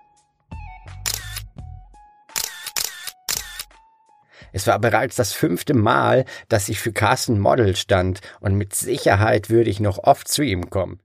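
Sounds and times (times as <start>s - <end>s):
camera shutter clicking: 1.0s - 1.5s, 2.3s - 3.8s
speech: 4.5s - 11.0s.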